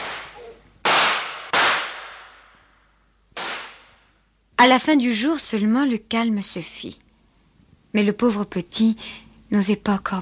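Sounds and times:
gunshots with decay: 0:00.0 - 0:02.5, 0:03.4 - 0:04.0
speech: 0:04.6 - 0:07.0, 0:07.9 - 0:10.2.

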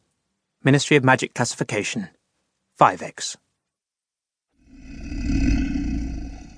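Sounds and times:
speech: 0:00.6 - 0:02.2, 0:02.8 - 0:03.4
deep rumbling roar of a manticore: 0:04.7 - 0:06.5.

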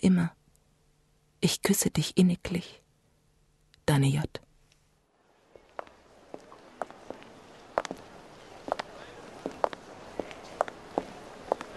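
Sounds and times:
speech: 0:00.0 - 0:00.4, 0:01.4 - 0:02.8, 0:03.9 - 0:04.4
low hiss: 0:00.0 - 0:11.7
footsteps walking along a street in Berlin: 0:05.3 - 0:11.7.

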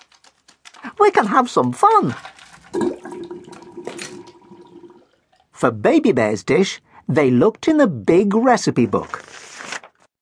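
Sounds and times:
speech: 0:01.0 - 0:02.4, 0:05.6 - 0:09.3
water running from a kitchen tap as paws are washed: 0:02.7 - 0:05.4.

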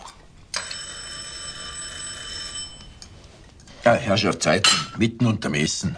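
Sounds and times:
doorbell at a family home ringing during a meal: 0:00.6 - 0:03.0
speech: 0:03.9 - 0:05.9.

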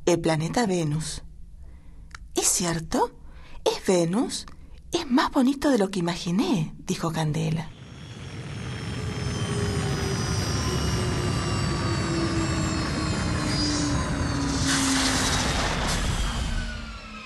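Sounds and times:
speech: 0:00.1 - 0:01.3, 0:02.6 - 0:07.8
spaceship landing sound effect with jet-like engine roar: 0:07.7 - 0:17.2.

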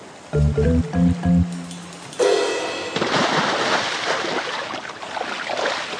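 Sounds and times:
short tonal blips: 0:00.4 - 0:02.8
man diving into water: 0:03.0 - 0:05.9.

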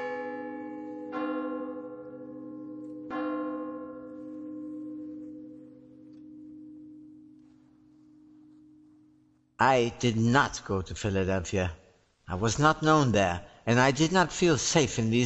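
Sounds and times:
church bells tolling: 0:00.0 - 0:10.1
speech: 0:09.6 - 0:15.2.

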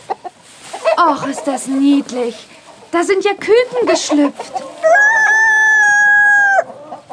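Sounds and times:
faint farmyard noise: 0:00.0 - 0:07.1
speech: 0:01.0 - 0:04.7
rooster crowing loudly: 0:04.8 - 0:06.8.

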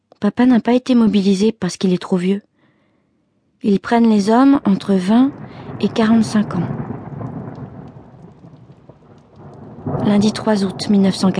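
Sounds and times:
speech: 0:00.2 - 0:02.5, 0:03.6 - 0:06.8, 0:10.0 - 0:11.3
deep thunder rumbling: 0:04.1 - 0:11.3
heavy rain pouring in a thunderstorm: 0:04.5 - 0:11.3.

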